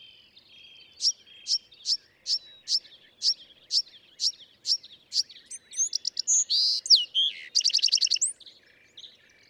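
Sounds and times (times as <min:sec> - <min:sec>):
Bewick's wren song: 0:00.9 - 0:08.4.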